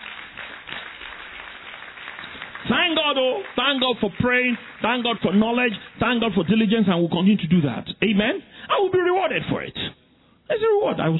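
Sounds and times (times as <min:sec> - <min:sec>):
church congregation clapping as an offering: 0:00.0 - 0:07.0
speech: 0:02.7 - 0:11.1.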